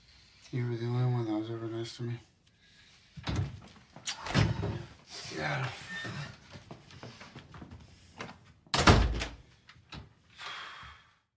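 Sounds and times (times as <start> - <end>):
speech: 0.5 - 2.3, 5.4 - 6.4
door swinging open with a heavy thunk: 4.2 - 4.9, 8.7 - 9.4.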